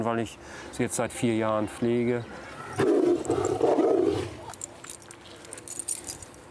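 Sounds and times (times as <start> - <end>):
speech: 0.0 - 3.7
tiger roaring at another tiger over food: 2.5 - 4.6
light metallic clinks: 4.5 - 6.4.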